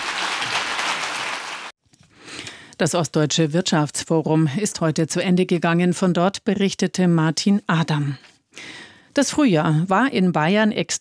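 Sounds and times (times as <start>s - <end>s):
audience applause at an economic forum after a political speech: 0.0s - 1.7s
speech: 2.8s - 10.9s.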